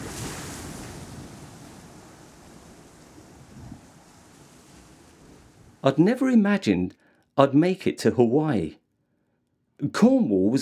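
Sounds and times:
ocean waves crashing on the shore in Hawaii: 0:00.0 - 0:05.8
wind buffeting: 0:00.0 - 0:05.8
speech: 0:05.8 - 0:08.8, 0:09.8 - 0:10.6.

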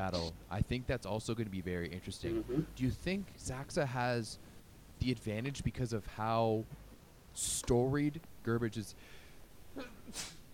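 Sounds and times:
speech: 0:00.0 - 0:06.8, 0:07.4 - 0:09.2, 0:09.8 - 0:10.4
person sneezing: 0:02.3 - 0:02.8, 0:09.8 - 0:10.5.

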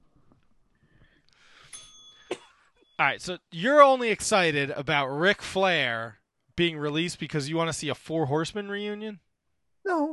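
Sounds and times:
single bell ringing: 0:01.6 - 0:03.0
speech: 0:03.0 - 0:09.2, 0:09.8 - 0:10.1.

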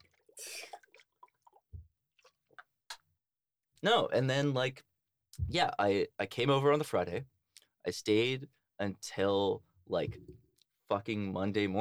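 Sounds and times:
person drinking water: 0:00.0 - 0:01.6
speech: 0:03.8 - 0:11.7.

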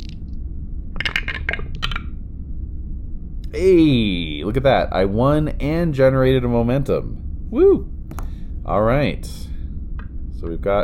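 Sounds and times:
low rumble: 0:00.0 - 0:10.8
dice clattering down through a dice tower: 0:01.0 - 0:02.0
speech: 0:03.5 - 0:07.9, 0:08.7 - 0:09.5, 0:10.4 - 0:10.8.

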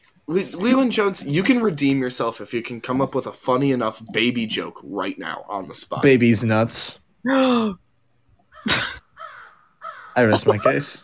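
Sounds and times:
speech: 0:00.3 - 0:07.8, 0:08.6 - 0:09.0, 0:10.2 - 0:11.0
crow cawing harshly: 0:08.5 - 0:10.9.

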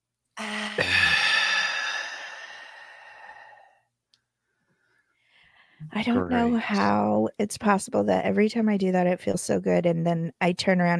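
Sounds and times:
deep cleansing breath exhale: 0:00.4 - 0:03.8
speech: 0:06.0 - 0:10.9.

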